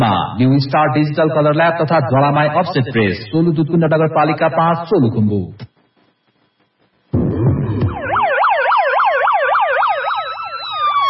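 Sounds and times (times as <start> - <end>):
speech: 0.0 - 5.7
police and fire engine sirens: 7.3 - 11.0.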